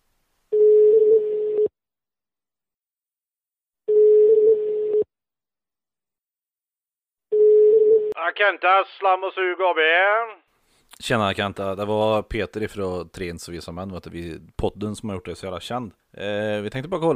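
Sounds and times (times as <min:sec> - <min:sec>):
telephone ringback tone while calling a sanitation company: 0:00.5 - 0:01.7, 0:03.9 - 0:05.1, 0:07.3 - 0:08.1
speech: 0:08.3 - 0:17.1.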